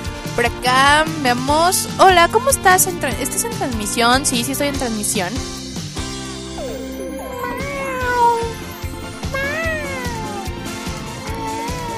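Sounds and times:
speech: 0.4 - 5.6
person imitating a cat with meows and yowls: 6.6 - 8.6, 9.2 - 10.5, 11.3 - 11.9.

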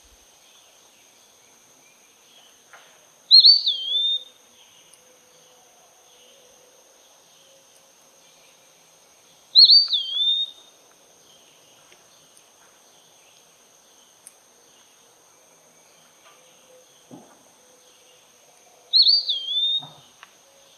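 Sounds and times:
Eastern wood pewee song: 3.3 - 4.3, 9.6 - 10.7, 18.9 - 20.0.

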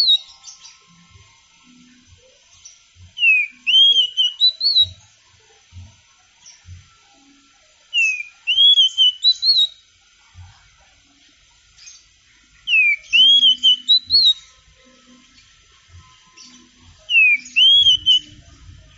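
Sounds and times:
Oriental magpie-robin whistled song: 0.0 - 0.8, 2.6 - 5.0, 7.9 - 9.8, 12.6 - 14.6, 16.3 - 18.4.

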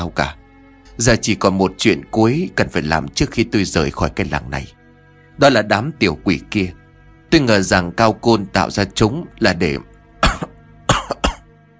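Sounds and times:
speech: 0.0 - 0.4, 1.0 - 4.8, 5.4 - 9.9
man coughing: 10.2 - 11.5.

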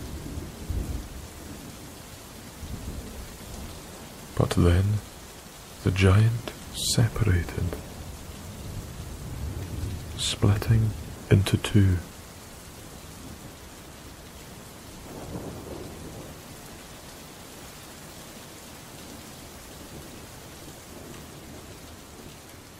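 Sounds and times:
low rumble of thunder in a thunderstorm: 0.0 - 4.4, 7.7 - 10.2, 12.8 - 17.0, 19.8 - 22.4
lashing rain hissing in a thunderstorm: 0.0 - 22.7
speech: 4.4 - 5.1, 5.8 - 7.9, 10.2 - 12.1.

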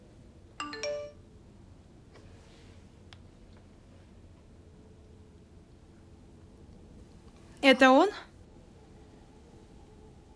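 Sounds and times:
phone message notification three-note chime: 0.6 - 1.2
speech: 7.7 - 8.2.

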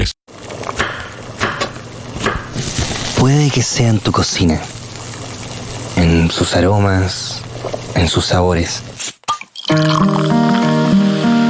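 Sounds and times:
beer pouring gurgle: 1.9 - 9.0, 9.6 - 11.1
speech: 3.2 - 4.8, 6.2 - 9.1.

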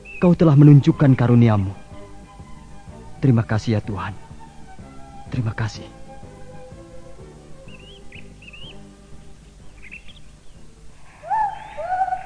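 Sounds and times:
pelican singing in whistled chirping phrases: 0.0 - 0.4, 7.6 - 8.9, 9.7 - 12.2
speech: 0.2 - 1.8, 3.2 - 4.2, 5.3 - 6.0.

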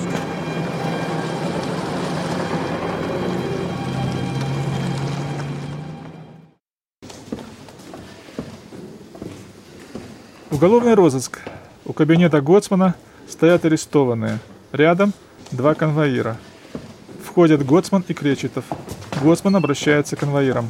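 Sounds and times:
car driving away with engine rumble: 0.0 - 6.5
road noise: 0.0 - 6.6
speech: 10.6 - 16.5, 17.4 - 20.6.

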